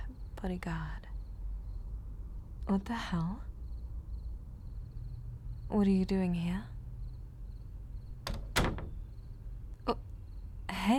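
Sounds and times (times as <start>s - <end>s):
faint hum: 0.0s - 10.9s
speech: 0.4s - 1.1s, 2.7s - 3.5s, 5.7s - 6.7s, 9.9s - 10.1s, 10.8s - 10.9s
latch click: 8.2s - 9.1s
door closing: 8.2s - 9.4s.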